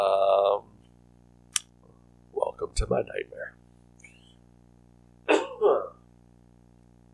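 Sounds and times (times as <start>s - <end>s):
speech: 2.6s - 3.7s
person coughing after a recent case of COVID: 5.3s - 6.0s.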